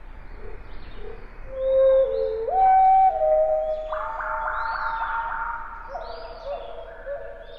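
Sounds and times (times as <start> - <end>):
wood thrush song slowed to quarter speed, whistled notes: 1.5 - 5.7.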